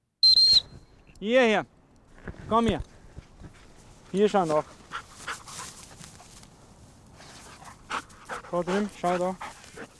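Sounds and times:
speech: 1.2 - 1.8, 2.5 - 2.9, 4.1 - 4.8, 8.5 - 9.5
hunting dog panting during a rabbit hunt on a heath: 4.6 - 6.4, 7.4 - 9.9.

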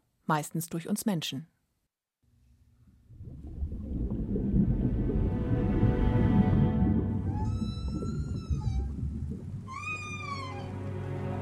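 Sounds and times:
speech: 0.3 - 1.6
deep steady underwater rumble: 2.8 - 11.0
whale song: 3.8 - 11.4.

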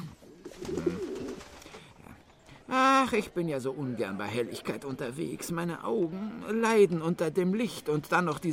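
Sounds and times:
pigeon cooing: 0.0 - 1.8
speech: 2.7 - 8.5.

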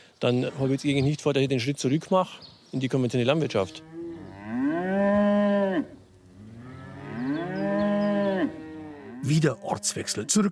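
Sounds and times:
speech: 0.2 - 4.0, 9.3 - 10.5
cow mooing on an organic dairy farm: 3.6 - 10.4.

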